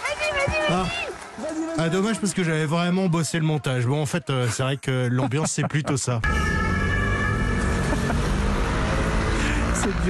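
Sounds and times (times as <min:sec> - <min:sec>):
speech: 0:00.4 - 0:06.7, 0:09.9 - 0:10.0
laughter: 0:00.6 - 0:02.7, 0:04.2 - 0:06.2, 0:07.5 - 0:10.0
busy street traffic with cars and scooters: 0:06.2 - 0:10.0.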